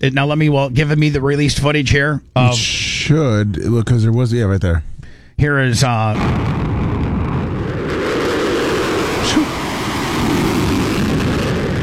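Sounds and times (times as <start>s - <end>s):
speech: 0.0s - 6.7s
fighter jet roaring with afterburners on: 6.2s - 11.8s.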